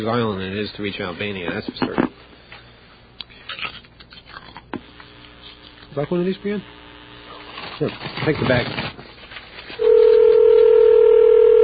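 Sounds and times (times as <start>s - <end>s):
speech: 0.0s - 2.3s, 6.0s - 6.8s, 7.8s - 8.9s
electronic telephone ringing tone: 9.8s - 11.6s.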